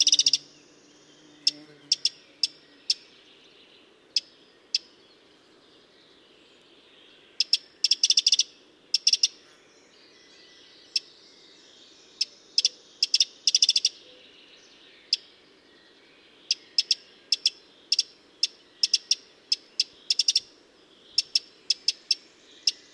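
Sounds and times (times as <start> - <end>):
Eurasian wren ticking calls: 0.0 - 3.5, 4.1 - 5.0, 7.2 - 9.4, 12.1 - 15.4, 16.4 - 22.9.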